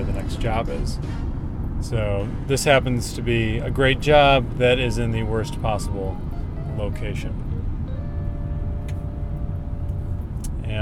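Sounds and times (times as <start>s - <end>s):
car engine and road rumble as car pulls in behind another car: 0.0s - 10.8s
speech: 0.3s - 7.4s, 10.7s - 10.8s.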